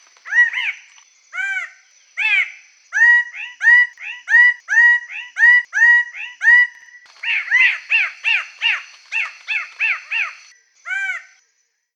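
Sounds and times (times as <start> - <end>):
songbird chirping song: 0.0 - 11.9.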